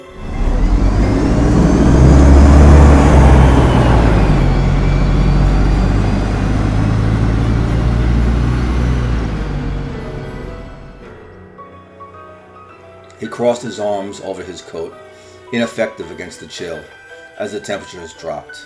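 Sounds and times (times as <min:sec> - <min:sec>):
broad road whir: 0:00.0 - 0:11.3
bus motor accelerating with groaning low rumble: 0:00.0 - 0:11.3
speech: 0:13.4 - 0:18.6.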